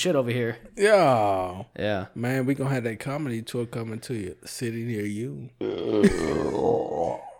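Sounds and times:
speech: 0:00.0 - 0:07.3
long deep burp: 0:05.6 - 0:07.3.

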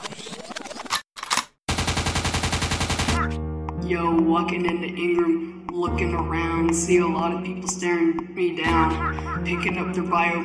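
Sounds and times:
rapid-fire automatic shots: 0:01.7 - 0:03.3
sharp gunshot bursts: 0:01.7 - 0:03.3
speech: 0:03.9 - 0:10.4.

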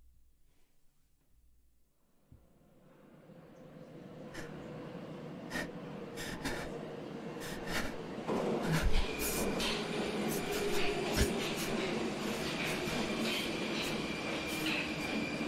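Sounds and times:
subway train rumbling: 0:02.6 - 0:15.4
high metallic squeal: 0:08.7 - 0:15.4.

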